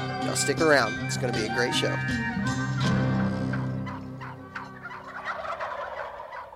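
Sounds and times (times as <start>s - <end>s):
speech: 0.3s - 3.0s
wild turkey gobbling: 1.4s - 6.5s.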